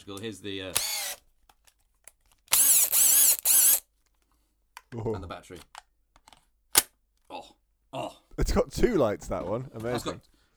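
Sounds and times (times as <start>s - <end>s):
speech: 0.0s - 1.2s, 4.9s - 5.8s, 7.3s - 10.5s
cordless combi drill whirring: 0.7s - 1.3s, 2.5s - 3.9s.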